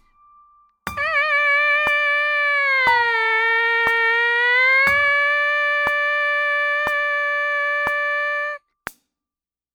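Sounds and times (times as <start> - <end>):
MPC sampler buzz: 1.0 - 8.6.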